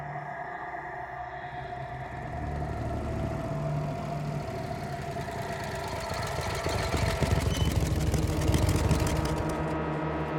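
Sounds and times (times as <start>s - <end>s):
brief rising whine: 0.0s - 8.3s
engines of black cars idling around a residence: 1.2s - 10.2s.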